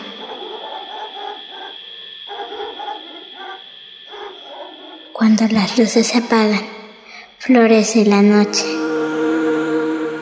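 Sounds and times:
distant dog barking: 0.0 - 5.2
steady hiss: 0.0 - 10.1
speech: 5.2 - 6.8, 7.4 - 8.8.

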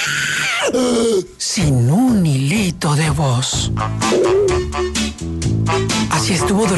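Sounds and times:
speech: 0.1 - 6.7
voice imitating a vulture screaming: 4.0 - 4.7.

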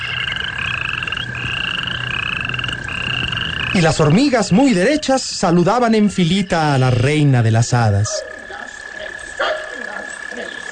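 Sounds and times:
dense chorus of toads croaking: 0.0 - 10.6
speech: 3.8 - 8.3.

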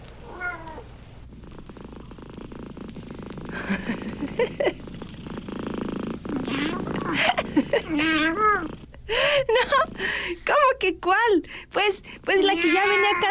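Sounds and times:
steady low cat purr: 0.0 - 10.4
cats meowing in the morning: 0.2 - 0.9, 6.4 - 8.8, 12.3 - 13.3
speech: 10.9 - 13.3.

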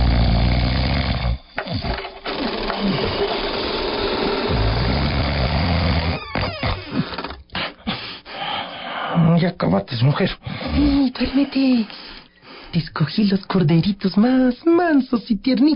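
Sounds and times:
man snoring loudly: 0.0 - 7.2
speech: 9.4 - 12.0, 12.7 - 15.7.

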